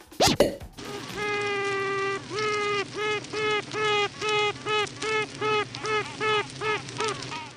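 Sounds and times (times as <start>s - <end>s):
honeybees honking inside a hive: 0.8s - 7.5s.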